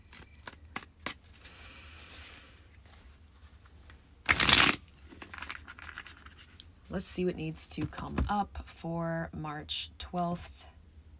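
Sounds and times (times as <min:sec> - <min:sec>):
cards shuffled for a card reading: 0:00.0 - 0:06.6
speech: 0:06.9 - 0:10.7.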